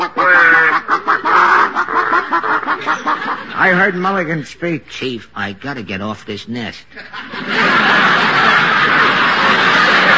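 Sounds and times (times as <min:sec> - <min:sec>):
people imitating chickens clucking inside a chicken coop at night: 0:00.0 - 0:03.6
laughter: 0:00.0 - 0:04.1, 0:06.8 - 0:10.1
speech: 0:03.6 - 0:08.3.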